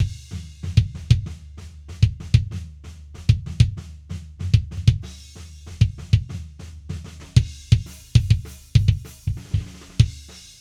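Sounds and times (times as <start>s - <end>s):
kick drum with full EQ: 0.0s - 1.4s, 2.0s - 5.1s, 5.8s - 6.3s, 7.3s - 10.6s.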